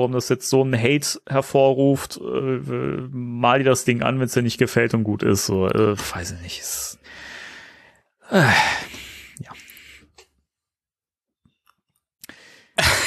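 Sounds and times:
speech: 0:00.0 - 0:07.3, 0:08.3 - 0:09.5
quiet breath: 0:07.0 - 0:10.2, 0:12.2 - 0:12.8
person yawning: 0:08.3 - 0:09.7.

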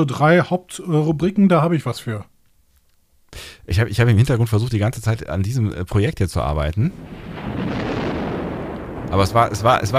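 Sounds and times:
speech: 0:00.0 - 0:02.3, 0:03.3 - 0:07.6, 0:09.1 - 0:09.9
deep rumble of thunderstorm sound effect: 0:06.9 - 0:09.9.

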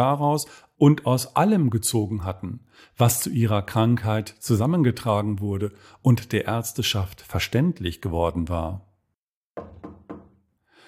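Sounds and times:
speech: 0:00.0 - 0:08.9
firm knocks on a wooden door: 0:09.6 - 0:10.4.

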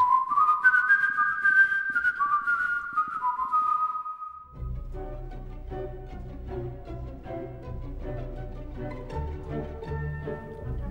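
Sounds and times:
person whistling a short recurring film melody: 0:00.0 - 0:04.6.

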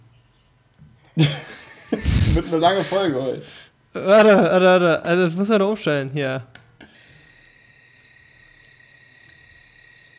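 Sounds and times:
speech: 0:01.2 - 0:01.5, 0:02.4 - 0:06.6
laughter: 0:01.2 - 0:04.8
crickets chirping at night: 0:07.2 - 0:10.1.

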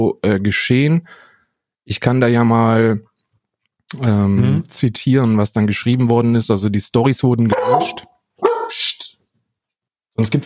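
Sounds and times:
speech: 0:00.0 - 0:01.3, 0:01.9 - 0:03.1, 0:03.9 - 0:08.1, 0:08.7 - 0:09.0, 0:10.2 - 0:10.4
female dog barking: 0:07.5 - 0:08.8.

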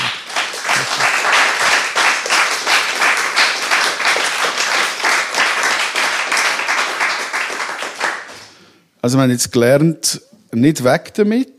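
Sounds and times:
audience applause: 0:00.0 - 0:08.4
speech: 0:09.0 - 0:11.5.

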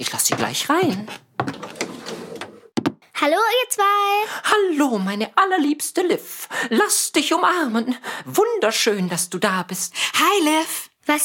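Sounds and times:
speech: 0:00.0 - 0:01.2, 0:03.2 - 0:11.2
window rattling clatter: 0:01.4 - 0:02.8
knocking on a window: 0:02.8 - 0:03.0.

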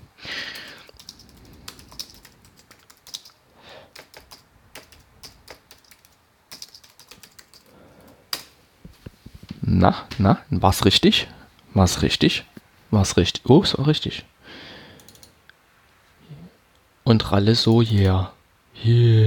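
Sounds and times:
typing a password on a computer keyboard: 0:00.5 - 0:08.5, 0:15.0 - 0:15.3
speech: 0:09.7 - 0:14.3, 0:17.1 - 0:19.2.

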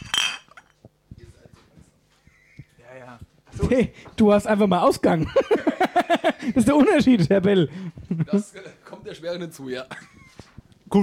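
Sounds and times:
beer glasses clinking in a toast: 0:00.0 - 0:00.8
speech: 0:03.0 - 0:10.1
laughter: 0:05.2 - 0:08.5.

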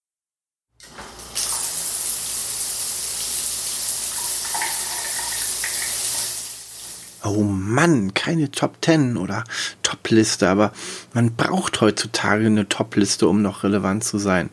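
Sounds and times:
water running from a shower head: 0:00.8 - 0:07.2
speech: 0:07.2 - 0:14.5.

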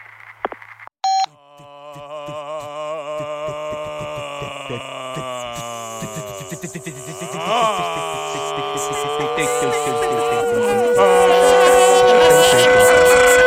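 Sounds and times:
answering machine beep: 0:01.0 - 0:01.3
laughter: 0:03.8 - 0:13.4
speech: 0:04.7 - 0:05.3, 0:06.0 - 0:11.6.

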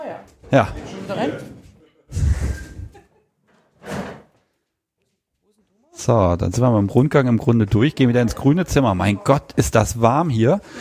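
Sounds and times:
speech: 0:00.1 - 0:01.5, 0:06.0 - 0:10.7
heavy door swinging open with a thud and rattle: 0:03.5 - 0:04.3.

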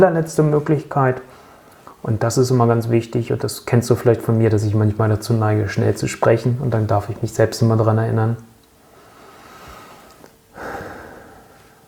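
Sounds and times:
speech: 0:00.0 - 0:01.4, 0:02.0 - 0:08.5
conscious deep breathing: 0:01.3 - 0:02.0, 0:08.8 - 0:11.8.

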